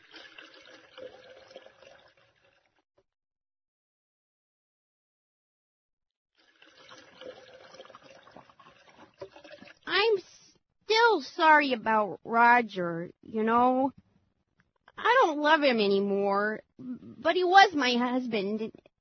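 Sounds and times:
liquid pouring into a glass: 0.0 - 2.8, 6.4 - 9.9
speech: 11.4 - 14.0, 15.0 - 18.8.

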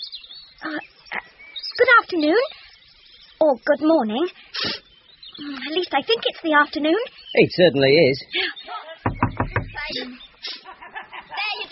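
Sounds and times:
speech: 2.0 - 2.6, 3.5 - 4.8, 5.4 - 8.4
firm knocking on a door: 9.0 - 10.0
laughter: 10.4 - 11.7.

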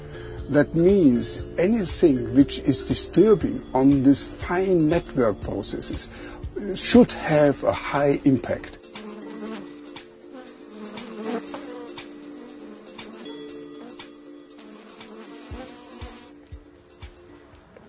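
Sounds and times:
speech: 0.5 - 8.8
bees buzzing: 8.6 - 17.2.

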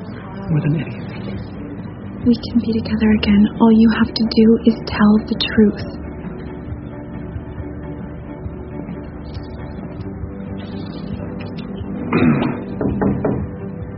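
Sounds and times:
speech: 0.5 - 1.5, 2.2 - 6.0, 12.2 - 12.4
firm knocks on a door: 12.4 - 13.6.

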